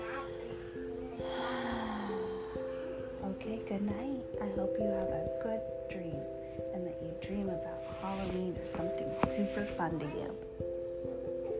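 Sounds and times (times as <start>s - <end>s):
steady sustained soft music tones: 0.0s - 11.5s
slow deep breath during a guided bedtime relaxation: 1.1s - 3.2s
speech: 3.7s - 10.4s.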